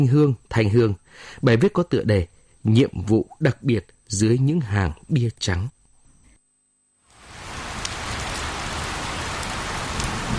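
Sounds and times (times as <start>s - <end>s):
speech: 0.0s - 5.8s
heavy rain pattering on a surface: 7.1s - 10.3s.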